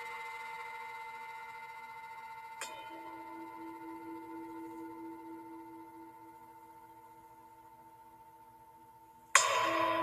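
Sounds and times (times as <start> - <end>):
low steady hum from a second strike: 0.0 - 10.0
singing bowl ringing: 0.0 - 10.0.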